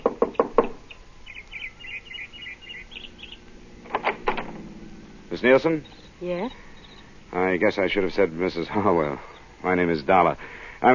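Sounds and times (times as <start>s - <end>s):
sharp knocks on a wooden house door: 0.0s - 0.8s
faint chirping birdsong outside: 0.0s - 10.9s
speech: 5.4s - 6.6s, 7.3s - 10.9s.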